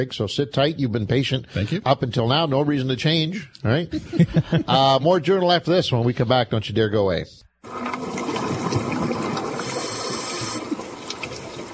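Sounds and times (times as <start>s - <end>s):
speech: 0.0s - 8.0s
laughter: 3.7s - 5.2s
loud steady rush of water churning: 7.6s - 11.7s.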